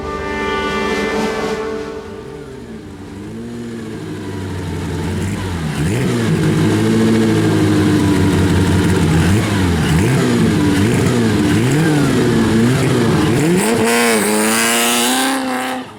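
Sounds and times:
original engine of a vintage Bugatti race car revving on the road: 0:00.2 - 0:15.9.

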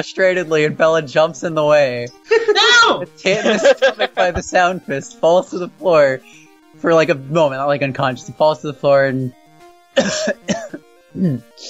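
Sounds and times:
speech: 0:00.0 - 0:09.4, 0:10.0 - 0:11.6
laughter: 0:03.3 - 0:04.6
person imitating a cough with their voice: 0:10.0 - 0:10.8.

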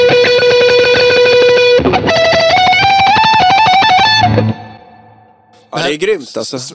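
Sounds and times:
distorted Telecaster electric guitar through an amp pedal: 0:00.0 - 0:05.2
speech: 0:05.9 - 0:06.7.

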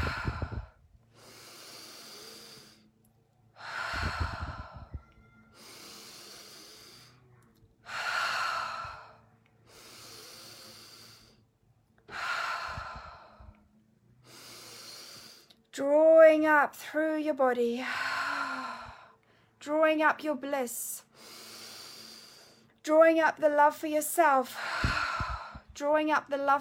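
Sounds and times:
slow breathing in through the nose and out through the mouth: 0:00.0 - 0:15.7, 0:17.8 - 0:19.6, 0:21.0 - 0:22.8, 0:24.4 - 0:25.8
speech: 0:15.8 - 0:18.1, 0:19.7 - 0:21.0, 0:22.9 - 0:24.7, 0:25.8 - 0:26.5.

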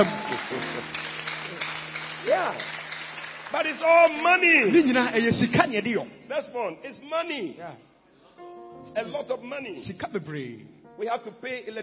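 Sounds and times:
speech: 0:00.0 - 0:00.6, 0:02.2 - 0:02.8, 0:03.5 - 0:07.9, 0:08.9 - 0:11.8
audience clapping: 0:00.0 - 0:05.4.

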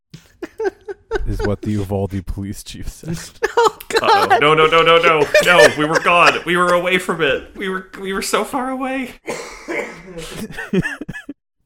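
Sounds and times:
laughter: 0:00.3 - 0:02.2, 0:03.0 - 0:07.7, 0:10.0 - 0:11.4
speech: 0:01.2 - 0:11.2
person coughing roughly: 0:09.3 - 0:11.2.

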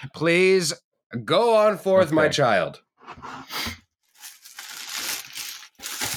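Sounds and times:
speech: 0:00.0 - 0:03.8
wrapping paper crinkling and tearing as a gift is unwrapped: 0:04.1 - 0:06.1.

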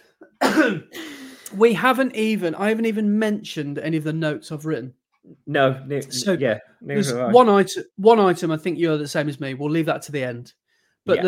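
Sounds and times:
cough: 0:00.2 - 0:01.0
rough gravelly throat clearing: 0:00.2 - 0:01.0
speech: 0:00.6 - 0:11.2.

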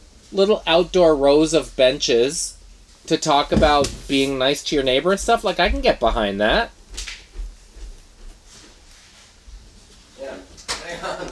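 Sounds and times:
speech: 0:00.3 - 0:06.8
door being shifted and bumped with dull low thuds: 0:03.5 - 0:04.1
laughter: 0:10.8 - 0:11.2.

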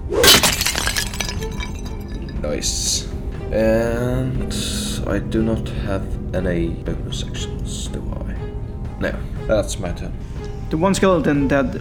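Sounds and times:
shattering crash: 0:00.0 - 0:09.4
speech: 0:02.4 - 0:08.2, 0:09.0 - 0:11.7.

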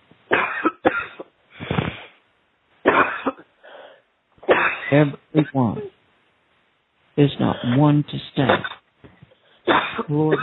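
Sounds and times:
person coughing harshly during a deliverance prayer: 0:00.3 - 0:02.0, 0:02.9 - 0:03.5, 0:04.4 - 0:05.1, 0:08.5 - 0:08.8, 0:09.7 - 0:10.4
person taking a deep breath: 0:01.5 - 0:02.2, 0:03.6 - 0:04.1
speech: 0:04.9 - 0:05.9, 0:07.2 - 0:08.8, 0:10.0 - 0:10.4.

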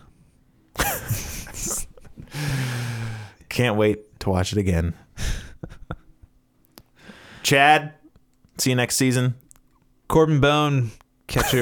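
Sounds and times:
breathing into a microphone: 0:02.2 - 0:03.5, 0:06.9 - 0:07.5
speech: 0:03.6 - 0:05.8, 0:07.5 - 0:08.0, 0:08.6 - 0:09.4, 0:10.1 - 0:11.5.

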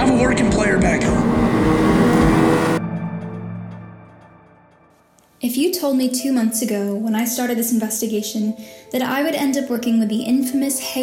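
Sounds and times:
loud rushing roar: 0:00.0 - 0:02.8
pickup truck engine droning: 0:00.0 - 0:02.8
steady low motor hum: 0:00.0 - 0:02.8
speech: 0:05.8 - 0:11.0.

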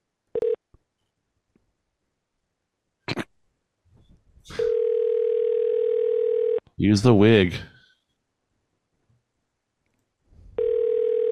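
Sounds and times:
telephone dial tone: 0:00.4 - 0:00.6, 0:04.6 - 0:06.6, 0:10.6 - 0:11.3
speech: 0:06.8 - 0:07.7.

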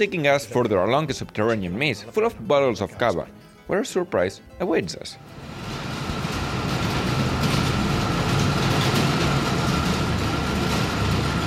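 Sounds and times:
speech: 0:00.0 - 0:05.6
small trolley train rumbling through underground tunnels of a cava cellar: 0:05.3 - 0:11.4.

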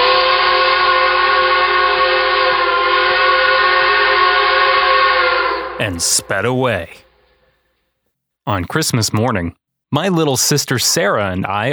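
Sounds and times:
loud sustained steam train whistle: 0:00.0 - 0:07.6
speech: 0:05.8 - 0:07.0, 0:08.5 - 0:11.7.

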